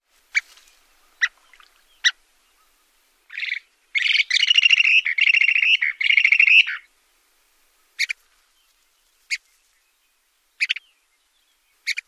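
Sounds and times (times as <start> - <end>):
bird calls and song: 0.3 - 6.9, 7.8 - 12.0.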